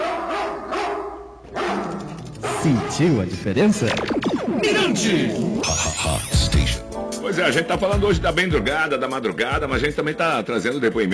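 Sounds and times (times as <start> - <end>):
guard dog barking: 0.0 - 3.2
speech: 2.6 - 6.3, 7.3 - 11.1.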